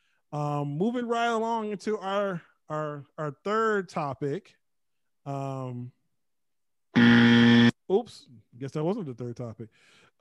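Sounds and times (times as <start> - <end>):
speech: 0.3 - 4.6, 5.2 - 6.0, 7.9 - 10.1
loud harsh electronic buzzer: 7.0 - 7.8.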